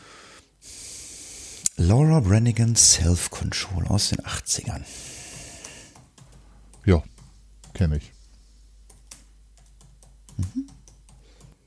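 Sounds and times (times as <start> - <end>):
low steady hum: 0.0 - 11.5
speech: 1.8 - 5.2, 6.8 - 7.1, 7.8 - 8.2, 10.4 - 10.6
typing on a computer keyboard: 8.9 - 11.6.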